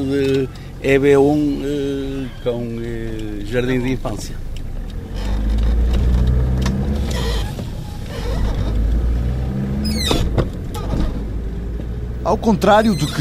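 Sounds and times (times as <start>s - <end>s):
speech: 0.0s - 4.4s, 12.2s - 13.2s
car engine and tire noise on a road to a primary school: 0.0s - 13.2s
brief higher-pitched squeak: 1.2s - 3.1s, 7.0s - 8.8s, 9.8s - 10.9s, 12.8s - 13.2s.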